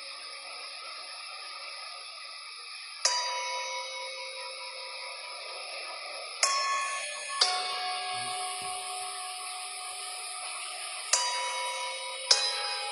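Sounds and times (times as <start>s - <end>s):
meditation bell struck and ringing: 3.0s - 12.9s.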